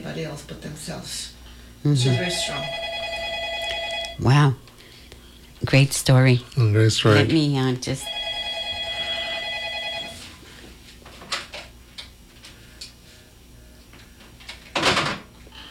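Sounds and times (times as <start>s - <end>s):
speech: 0.1s - 2.9s, 4.2s - 4.6s, 5.7s - 8.2s
telephone ringing with electronic tone: 2.0s - 4.3s, 8.0s - 10.3s.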